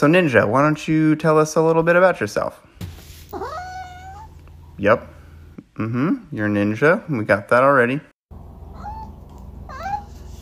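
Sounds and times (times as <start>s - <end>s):
speech: 0.0s - 2.7s, 4.8s - 5.2s, 5.8s - 8.1s
cat meowing: 3.3s - 4.3s.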